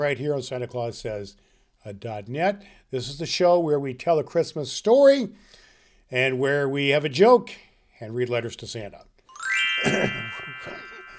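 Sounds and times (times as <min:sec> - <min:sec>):
speech: 0:00.0 - 0:09.1, 0:09.8 - 0:10.8
chimes ringing: 0:09.3 - 0:11.1.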